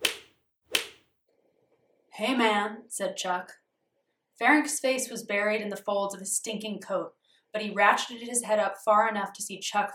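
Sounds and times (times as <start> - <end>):
woman's flip-flops slapping: 0.0 - 1.0
speech: 2.2 - 3.6, 4.4 - 9.9.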